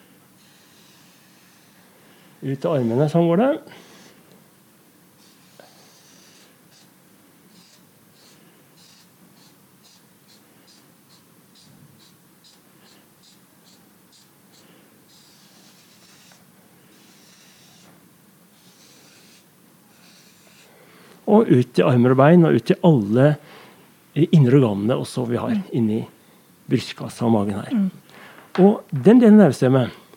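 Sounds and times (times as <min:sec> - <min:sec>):
steady hiss: 0:00.0 - 0:30.1
quick drawing strokes on paper: 0:00.4 - 0:01.9, 0:05.2 - 0:20.8
speech: 0:02.4 - 0:03.9, 0:21.4 - 0:23.6, 0:24.2 - 0:28.0, 0:28.6 - 0:30.0.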